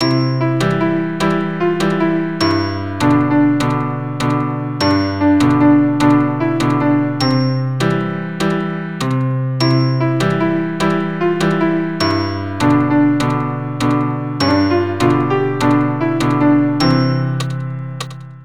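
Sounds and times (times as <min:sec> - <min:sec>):
keyboard triplet tune: 0:00.0 - 0:18.4.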